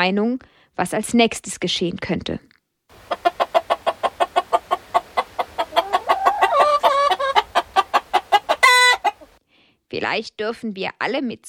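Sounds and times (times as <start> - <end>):
speech: 0.0 - 2.5, 9.9 - 11.4
flock of hens and roosters clucking: 2.9 - 9.4
overlapping squawks: 2.9 - 9.4.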